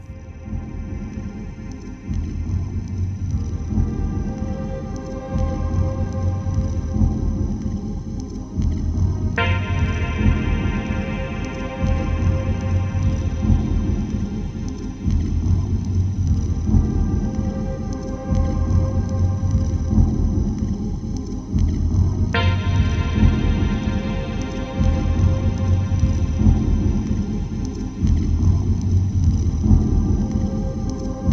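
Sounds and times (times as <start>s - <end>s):
dense ambient electronic music with deep rumbling low end: 0.0s - 31.3s
droning tones: 0.0s - 31.3s
drums: 0.0s - 31.3s.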